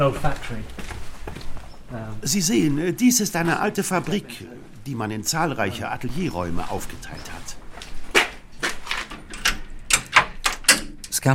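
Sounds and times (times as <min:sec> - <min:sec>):
speech: 0:00.0 - 0:00.8, 0:01.9 - 0:07.6
studio door being opened: 0:05.5 - 0:11.3
door handle and frame rattling and knocking: 0:08.2 - 0:11.2.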